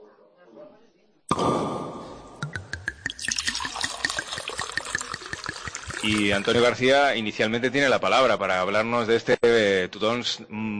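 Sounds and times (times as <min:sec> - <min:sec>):
Monastrell wine pouring and glugging from a just-uncorked bottle: 0:02.2 - 0:06.9
cork popping from a bottle of Monastrell wine: 0:02.4 - 0:06.6
speech: 0:06.0 - 0:10.7.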